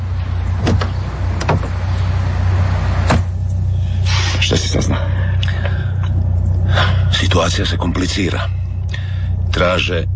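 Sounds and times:
steady low car engine hum: 0:00.0 - 0:10.1
car door clunks as someone climbs into a car: 0:00.6 - 0:01.9, 0:03.0 - 0:03.4
speech: 0:07.4 - 0:08.7, 0:09.6 - 0:10.1.

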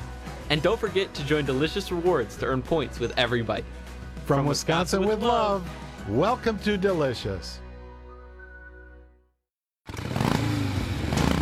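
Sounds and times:
speech: 0:00.5 - 0:07.6
motorcycle engine idling and revving: 0:09.9 - 0:11.4.

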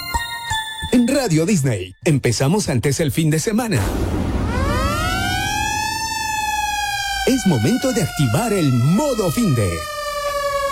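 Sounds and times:
speech: 0:00.9 - 0:04.2, 0:07.3 - 0:10.0
low rumbling background: 0:03.8 - 0:07.3
siren wail: 0:03.8 - 0:10.7.

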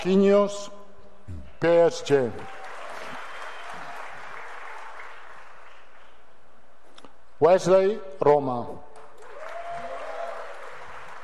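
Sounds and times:
speech: 0:00.0 - 0:02.6, 0:07.4 - 0:08.9
large crowd applauding: 0:02.3 - 0:06.2, 0:09.0 - 0:11.2.

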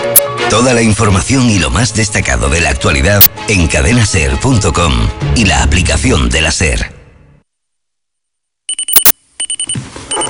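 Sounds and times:
speech: 0:00.1 - 0:07.0
electronic alarm clock ringing: 0:08.7 - 0:10.2.

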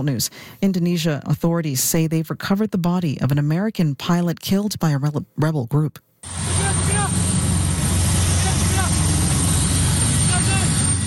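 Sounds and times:
speech: 0:00.0 - 0:06.6
military helicopter rotor and engine roar descending onto a remote hill in Papua: 0:06.2 - 0:11.0.

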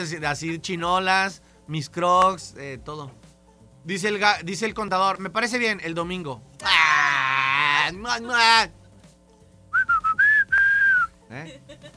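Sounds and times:
speech: 0:00.0 - 0:03.2, 0:03.8 - 0:06.8, 0:07.8 - 0:08.8, 0:11.3 - 0:11.9
person whistling: 0:09.7 - 0:11.2.

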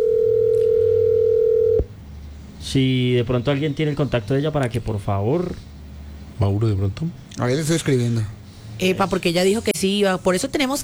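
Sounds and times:
loud steady phone ringing tone: 0:00.0 - 0:01.9
quiet low noise: 0:00.0 - 0:10.8
speech: 0:02.7 - 0:05.7, 0:06.4 - 0:10.8.

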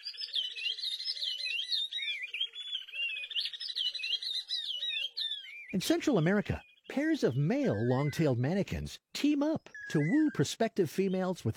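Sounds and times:
oriole warbler pair singing a duet in Senegal: 0:00.0 - 0:11.5
speech: 0:05.7 - 0:11.5.

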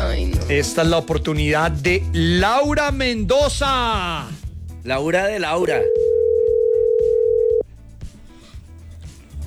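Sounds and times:
speech: 0:00.1 - 0:06.0
telephone ringing tone on an outgoing call: 0:05.7 - 0:07.7.

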